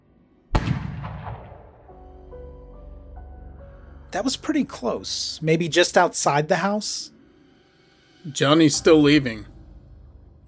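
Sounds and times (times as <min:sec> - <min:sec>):
single loud gunshot echoing: 0:00.5 - 0:02.0
speech: 0:04.1 - 0:07.2, 0:08.2 - 0:09.5.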